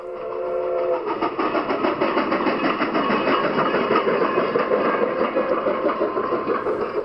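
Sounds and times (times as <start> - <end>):
narrow gauge steam train whistle: 0.0 - 1.2
narrow gauge steam train engine chuffing and rumbling: 0.0 - 7.0.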